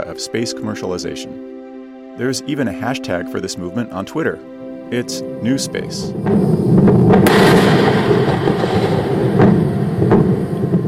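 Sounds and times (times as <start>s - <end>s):
speech: 0.0s - 1.6s, 2.2s - 8.6s
SpaceX Falcon rocket exploding on launch pad during fueling: 6.1s - 10.8s
sharp cracks of rocket explosion: 6.2s - 10.8s.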